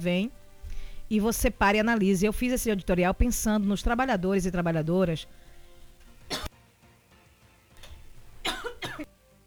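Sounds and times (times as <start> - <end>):
speech: 0.0 - 0.4, 1.1 - 5.4
person coughing in short harsh bursts: 5.2 - 6.5, 7.8 - 9.1.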